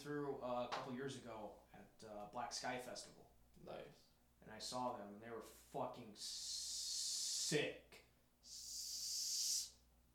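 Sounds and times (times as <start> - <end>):
speech: 0.0 - 6.8, 7.5 - 8.6
person imitating a snake with a breathy hiss: 6.2 - 7.5, 8.4 - 9.8.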